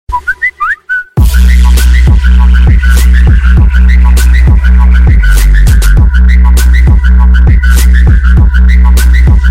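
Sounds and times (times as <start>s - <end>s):
bass-boosted trap music: 1.2s - 9.5s.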